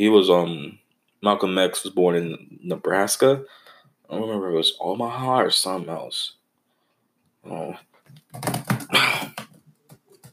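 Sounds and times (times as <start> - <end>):
speech: 0.0 - 6.4, 7.4 - 9.2
typing on a computer keyboard: 8.1 - 10.3.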